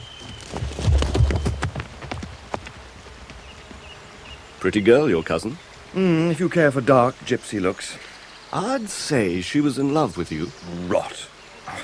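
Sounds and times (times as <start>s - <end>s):
horse hooves clip-clopping as a rider rides off: 0.0s - 4.5s
speech: 4.6s - 11.3s.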